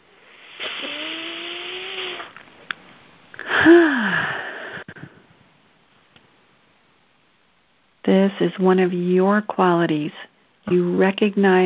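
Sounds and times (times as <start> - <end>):
deep breath drawn in and let out during a calm guided exercise: 3.4 - 5.2
soft falling voiced sigh: 3.4 - 5.2
speech: 8.2 - 11.6.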